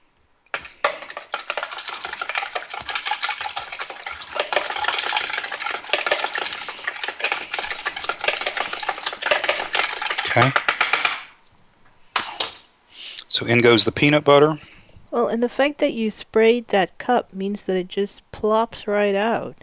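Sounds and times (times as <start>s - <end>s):
egg lightly beaten with a utensil while cooking: 0.5s - 11.4s
speech: 13.5s - 19.6s.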